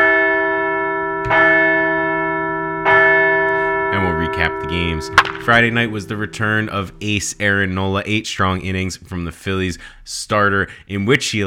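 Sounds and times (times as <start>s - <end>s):
large bell ringing: 0.0s - 7.8s
sustained metallic hum: 4.3s - 7.8s
speech: 4.4s - 11.4s.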